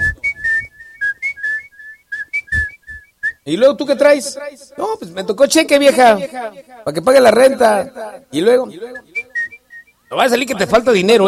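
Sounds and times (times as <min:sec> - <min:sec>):
person whistling a short lilting tune: 0:00.0 - 0:03.5, 0:09.0 - 0:10.2
speech: 0:03.4 - 0:09.1, 0:10.1 - 0:11.2.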